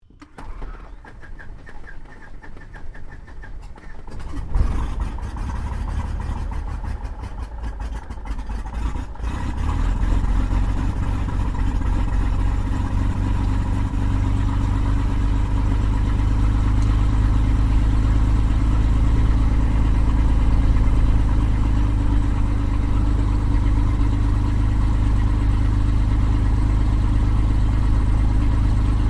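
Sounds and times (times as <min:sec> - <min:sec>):
Cessna O-1 Bird Dog spotter aircraft engine starting, idling and taxiing, heard from the interior: 0:00.0 - 0:29.0.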